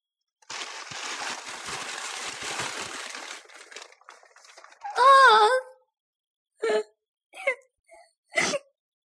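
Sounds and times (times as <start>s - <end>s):
papery rustling: 0.4s - 5.0s
child crying wail and whimpering sobs: 4.9s - 5.7s.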